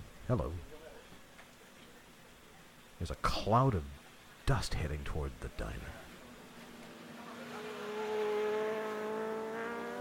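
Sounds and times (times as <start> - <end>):
speech: 0.3 - 0.8, 3.0 - 6.1
motorcycle engines rumbling while pulling into a driveway: 6.1 - 10.0.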